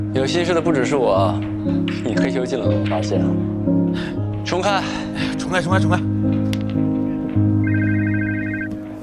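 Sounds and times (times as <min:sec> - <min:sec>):
speech: 0:00.2 - 0:06.4
telephone ringing with a rapid warbling electronic trill: 0:07.6 - 0:08.9.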